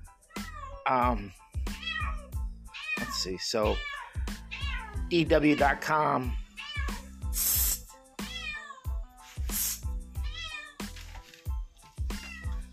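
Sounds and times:
cat meowing insistently: 0.3s - 0.9s, 1.7s - 7.1s, 8.3s - 9.0s, 10.2s - 10.8s, 12.1s - 12.7s
speech: 0.9s - 1.4s, 3.2s - 3.9s, 5.1s - 6.4s.

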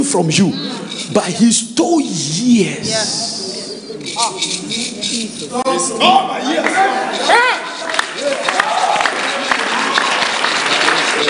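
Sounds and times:
speech: 0.0s - 3.3s, 4.0s - 8.5s
people shouting excitedly: 5.9s - 10.4s
audience clapping: 7.6s - 11.2s.

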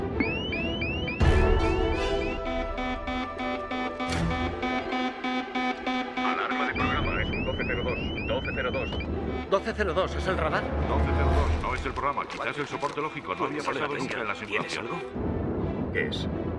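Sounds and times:
lunar module computer alarm tones before powered descent: 0.2s - 9.6s
speech: 7.8s - 15.4s, 15.9s - 16.5s.

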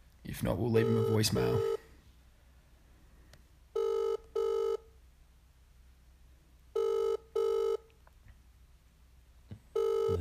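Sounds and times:
speech: 0.3s - 1.8s
ringback tone on an outgoing phone call: 0.8s - 1.9s, 3.8s - 4.9s, 6.8s - 7.8s, 9.8s - 10.1s.

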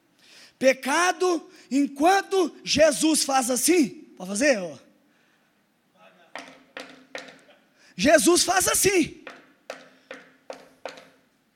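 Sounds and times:
speech: 0.6s - 4.8s, 8.0s - 9.4s
firm knocking on a wooden door: 6.4s - 7.5s, 9.2s - 11.2s.

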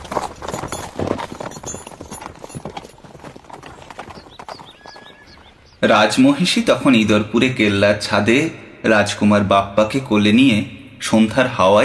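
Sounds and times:
black mountain horse hooves galloping at full speed: 0.0s - 7.3s
speech: 5.8s - 11.8s.

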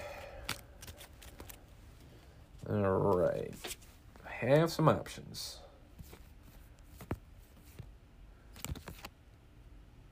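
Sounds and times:
deck of cards being shuffled during a card game: 0.4s - 1.7s, 3.0s - 4.0s, 6.0s - 7.9s, 8.5s - 9.2s
speech: 2.7s - 3.8s, 4.4s - 5.6s.

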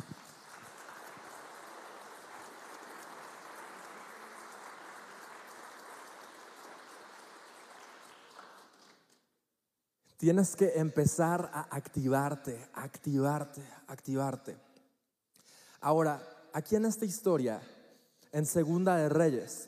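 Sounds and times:
large crowd applauding: 0.0s - 9.2s
speech: 10.2s - 14.7s, 15.8s - 19.6s.

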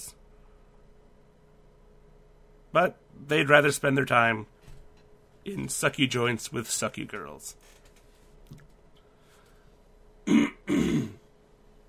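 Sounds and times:
speech: 2.8s - 4.5s, 5.4s - 7.8s
phlegmy early-morning throat clearing: 10.2s - 11.3s.

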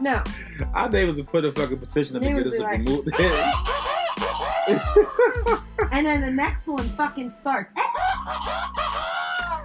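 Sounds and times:
speech: 0.0s - 3.8s, 4.7s - 8.8s
laughter: 2.8s - 5.9s
rooster crowing: 3.3s - 5.0s, 7.8s - 9.6s.

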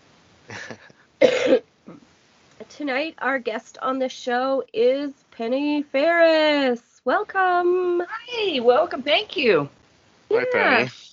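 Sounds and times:
raspy coughs: 0.5s - 1.6s
speech: 0.7s - 1.7s, 2.8s - 11.1s.

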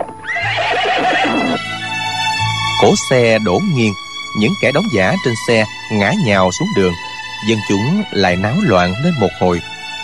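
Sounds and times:
carriage horses neighing in distress after being struck by pebbles: 0.0s - 1.7s
speech: 2.8s - 9.7s.

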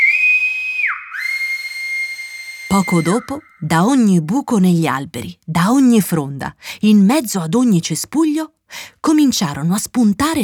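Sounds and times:
loud piercing whistle from a tree branch: 0.0s - 3.7s
speech: 2.7s - 10.4s.

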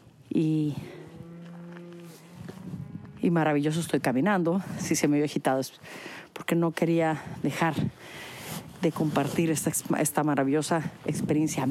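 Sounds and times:
speech: 0.4s - 0.9s, 3.2s - 11.7s
cow mooing outdoors: 0.8s - 3.4s.

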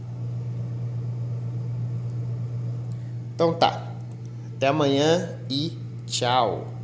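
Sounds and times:
open freezer humming: 0.0s - 6.8s
speech: 3.4s - 3.9s, 4.6s - 6.8s.

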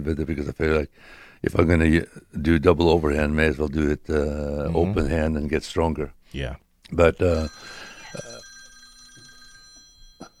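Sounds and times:
speech: 0.0s - 8.3s
phone ringing with a bright electronic tone: 7.3s - 10.3s.

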